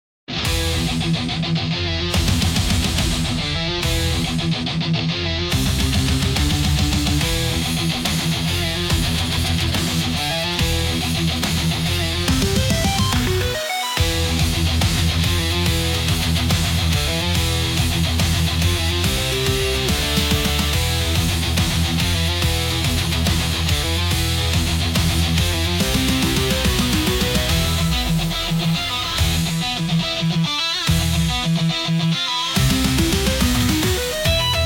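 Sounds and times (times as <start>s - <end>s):
hard rock music: 0.3s - 34.6s.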